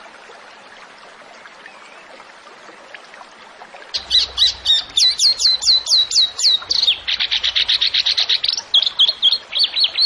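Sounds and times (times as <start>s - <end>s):
zebra finch singing: 4.0s - 10.0s.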